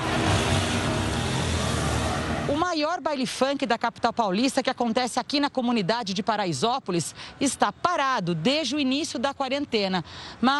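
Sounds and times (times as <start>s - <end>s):
motorcycle engine revving: 0.0s - 2.5s
speech: 2.8s - 10.5s.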